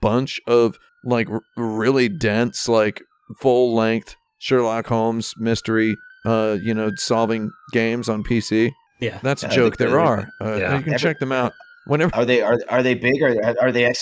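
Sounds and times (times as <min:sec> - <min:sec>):
speech: 0:00.0 - 0:13.9
police car siren wailing: 0:00.3 - 0:13.9
laughter: 0:09.0 - 0:13.9.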